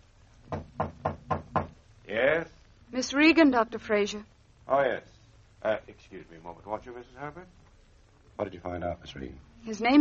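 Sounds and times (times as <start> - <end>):
light knock on a door: 0.4 - 1.8
speech: 2.1 - 7.6, 8.4 - 9.9.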